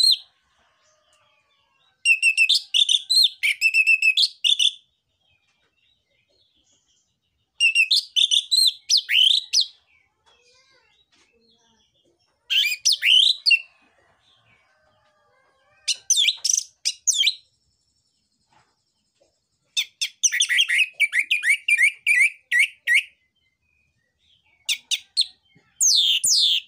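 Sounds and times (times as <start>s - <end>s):
orange-headed thrush singing varied high chirps and slurred whistles: 0.0s - 0.2s, 2.1s - 4.8s, 7.6s - 9.8s, 12.5s - 13.7s, 15.9s - 17.4s, 19.8s - 23.2s, 24.7s - 26.6s.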